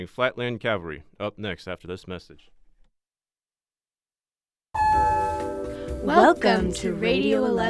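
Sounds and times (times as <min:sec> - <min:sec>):
speech: 0:00.0 - 0:02.6, 0:06.0 - 0:07.6
newly repaired elevator arrival chime with bright bell-like tone: 0:04.8 - 0:06.0.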